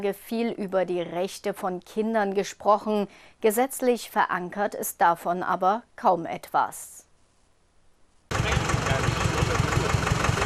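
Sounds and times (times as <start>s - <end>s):
speech: 0.0s - 7.0s
tractor engine idling at a festival ground: 8.3s - 10.4s.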